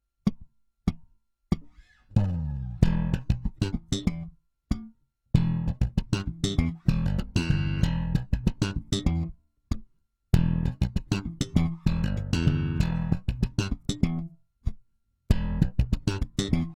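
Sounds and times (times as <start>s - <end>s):
slap bass with double thumb: 2.1s - 9.4s, 10.3s - 14.4s, 15.3s - 16.7s.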